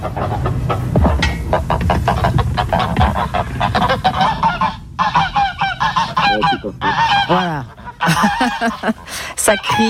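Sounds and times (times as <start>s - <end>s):
flock of geese honking: 0.0s - 9.8s
speech: 7.3s - 9.8s
laughter: 7.9s - 9.3s.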